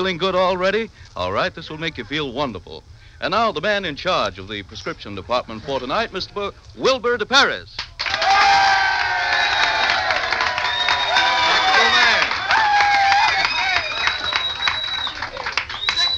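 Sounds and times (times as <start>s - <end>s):
speech: 0.0s - 7.9s
audience cheering at a live show: 7.8s - 16.1s.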